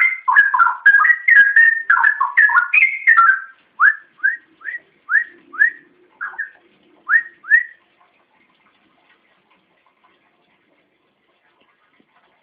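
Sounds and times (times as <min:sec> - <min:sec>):
Oriental magpie-robin song with tumbling mixed whistles: 0:00.0 - 0:07.8.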